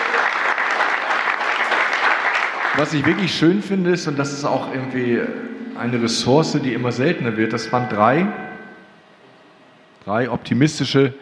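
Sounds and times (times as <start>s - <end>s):
audience applause after a talk: 0.0s - 3.7s
speech: 2.8s - 8.4s, 10.0s - 11.2s.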